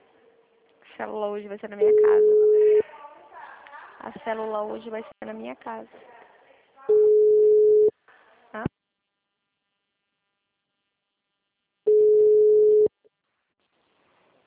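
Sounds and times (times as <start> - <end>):
speech: 1.0 - 2.6, 4.1 - 6.1
telephone busy tone beeps after a dropped call: 1.8 - 2.8, 6.9 - 7.9, 11.9 - 12.9.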